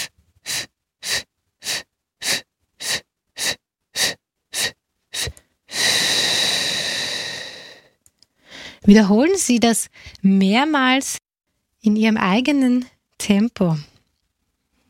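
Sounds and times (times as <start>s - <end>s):
long loud exhale in a breathing exercise: 0.0s - 8.8s
short breath puffs in a breathing exercise: 0.0s - 8.9s
speech: 8.9s - 11.2s, 11.8s - 13.9s.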